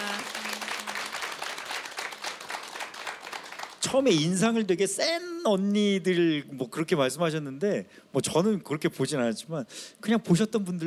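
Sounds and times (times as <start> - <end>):
audience applauding: 0.0 - 4.2
speech: 3.8 - 10.8.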